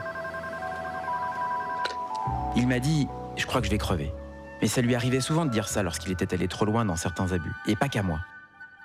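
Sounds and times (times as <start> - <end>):
telephone ringing with steady electronic tones: 0.0 - 2.2
speech: 2.6 - 8.3.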